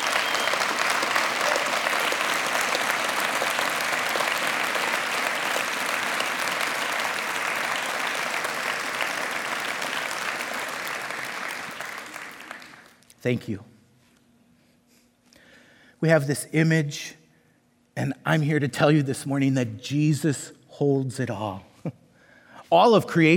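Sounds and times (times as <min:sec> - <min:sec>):
large audience applause for first responders: 0:00.0 - 0:13.0
speech: 0:13.2 - 0:13.7, 0:16.0 - 0:17.2, 0:18.0 - 0:22.0, 0:22.7 - 0:23.3.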